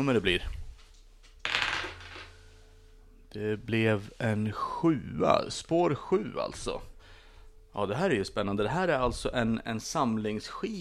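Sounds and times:
speech: 0:00.0 - 0:00.6, 0:03.3 - 0:06.9, 0:07.7 - 0:10.7
small die tossed onto a hard table: 0:01.4 - 0:02.4.

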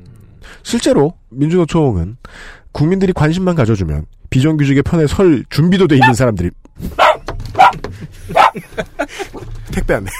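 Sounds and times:
speech: 0:00.6 - 0:07.0, 0:08.0 - 0:10.1
dog barking: 0:06.0 - 0:06.2, 0:07.0 - 0:08.6
laughter: 0:08.1 - 0:10.1.

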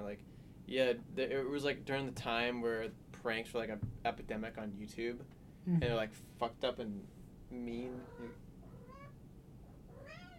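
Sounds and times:
speech: 0:00.0 - 0:08.4
steady low hum: 0:00.0 - 0:10.3
cat meowing wanting to get out: 0:07.9 - 0:09.2, 0:09.9 - 0:10.3.

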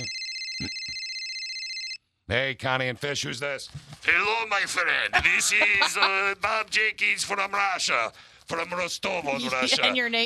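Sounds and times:
studio telephone ringing with a high electronic trill: 0:00.0 - 0:02.0
speech: 0:02.3 - 0:10.2
laughter: 0:04.1 - 0:07.6, 0:09.3 - 0:10.0.

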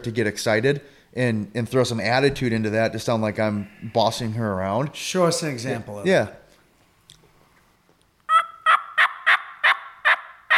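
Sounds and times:
speech: 0:00.0 - 0:06.4
imitated wild turkey hen yelping, angry and higher pitched: 0:08.3 - 0:10.5.

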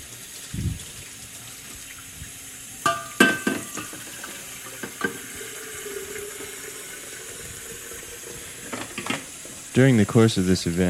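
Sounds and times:
water running from a faucet into a kettle: 0:00.0 - 0:10.8
speech: 0:09.8 - 0:10.8.

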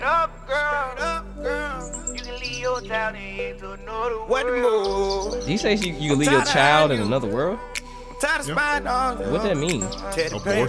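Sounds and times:
birds chirping and warbling inside a piece of music: 0:00.0 - 0:10.6
steady low bass line: 0:00.0 - 0:10.6
speech: 0:02.8 - 0:10.6.

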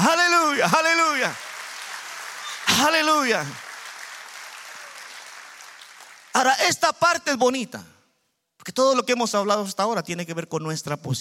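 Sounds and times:
audience applauding: 0:00.0 - 0:06.6
speech: 0:00.6 - 0:01.5, 0:02.8 - 0:03.6, 0:06.4 - 0:07.9, 0:08.6 - 0:11.1.

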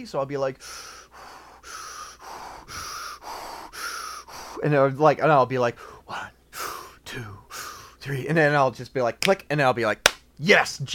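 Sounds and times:
speech: 0:00.0 - 0:01.3, 0:04.6 - 0:06.3, 0:07.1 - 0:07.4, 0:08.0 - 0:10.9
slow paced breathing from a breathing exercise: 0:00.6 - 0:04.8, 0:05.7 - 0:08.0.

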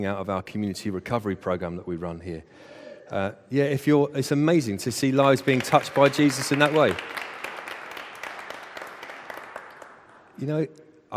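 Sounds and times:
speech: 0:00.0 - 0:07.2, 0:10.4 - 0:11.1
congregation applauding: 0:05.0 - 0:10.6.

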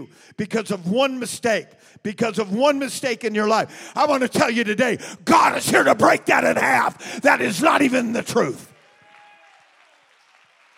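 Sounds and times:
speech: 0:00.0 - 0:08.7
audience clapping hands: 0:08.6 - 0:10.7.

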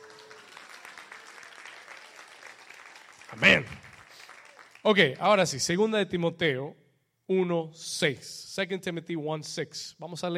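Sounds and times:
audience applause: 0:00.0 - 0:05.2
speech: 0:03.3 - 0:03.8, 0:04.8 - 0:10.3.

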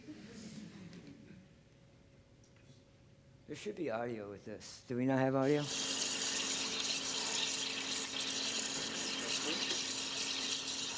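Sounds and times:
speech: 0:03.5 - 0:05.9
water pouring into a machine for super-chilling and freezing water: 0:05.6 - 0:10.9.

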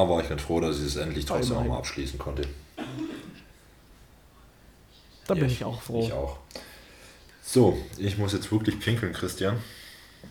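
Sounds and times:
speech: 0:00.0 - 0:02.6, 0:05.3 - 0:06.7, 0:07.5 - 0:10.2
faint background hum: 0:00.0 - 0:10.2
sick person coughing: 0:02.8 - 0:03.5.

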